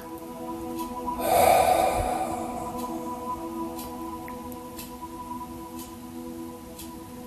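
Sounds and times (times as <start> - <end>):
soft steady droning tone: 0.0 - 7.2
deep breathy inhale and exhale during a guided breathing exercise: 1.2 - 3.8.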